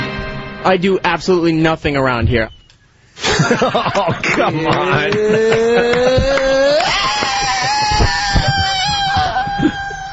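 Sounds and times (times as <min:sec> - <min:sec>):
speech: 0:00.6 - 0:02.6, 0:03.2 - 0:07.8
laughter: 0:03.2 - 0:10.1
man belting a long rock-style scream: 0:04.8 - 0:10.1.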